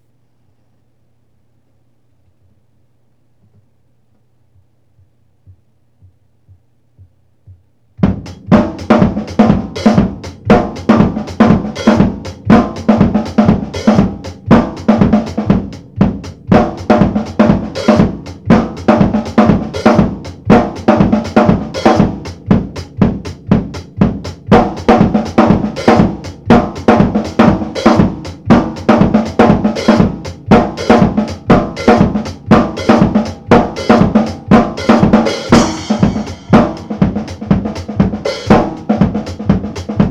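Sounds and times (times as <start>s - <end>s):
acoustic garage disco beat: 8.0s - 40.0s.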